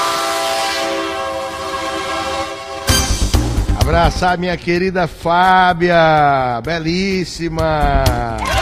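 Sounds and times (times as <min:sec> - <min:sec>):
train horn blast: 0:00.0 - 0:03.5
speech: 0:03.9 - 0:08.5.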